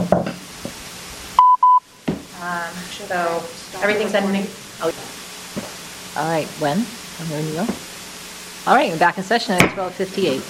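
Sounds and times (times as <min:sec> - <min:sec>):
faint noise: 0:00.0 - 0:10.4
phone line disconnect beeps: 0:01.4 - 0:01.9
speech: 0:03.0 - 0:05.2, 0:06.2 - 0:07.8, 0:08.6 - 0:10.4.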